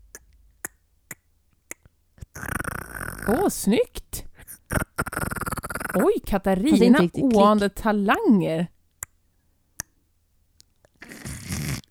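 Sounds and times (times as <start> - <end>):
voice imitating creepy throat clicking: 0.0 - 3.5, 4.4 - 6.2, 9.8 - 10.0, 10.6 - 11.8
speech: 3.3 - 4.8, 6.0 - 8.7.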